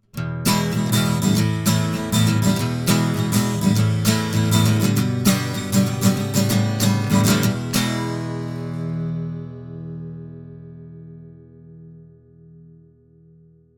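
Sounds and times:
clean steel-string acoustic guitar through a preamp: 0.0s - 13.7s.

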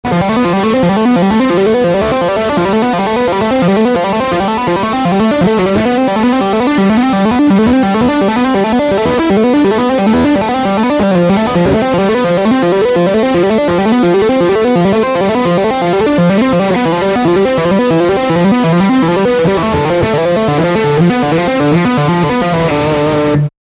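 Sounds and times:
electric guitar tapping on both humbucker pickups: 0.0s - 23.5s.

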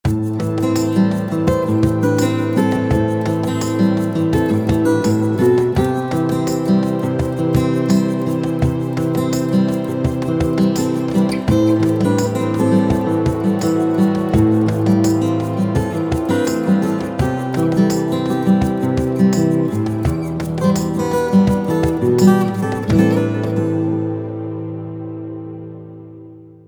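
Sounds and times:
guitar through a preamp: 0.0s - 26.6s.

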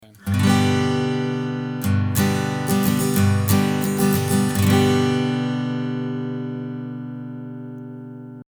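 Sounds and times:
acoustic guitar recorded with a Schoeps Mk4 microphone: 0.0s - 8.5s.

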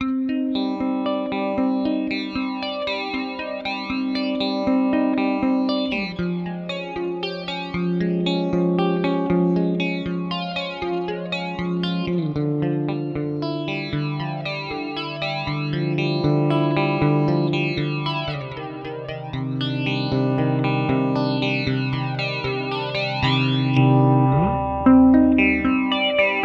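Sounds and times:
Yamaha THR30 II clean electric guitar with flanger and hall reverb: 0.0s - 26.4s.

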